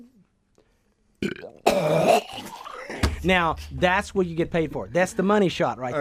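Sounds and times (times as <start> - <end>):
person imitating a guttural pre-burp: 1.2 - 3.1
person making a drawn-out fake retching gag: 1.2 - 3.2
speech: 3.2 - 5.9.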